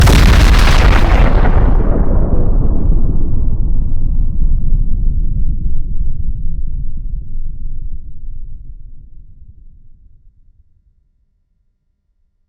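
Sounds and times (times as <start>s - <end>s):
nuclear explosion: 0.0s - 6.4s.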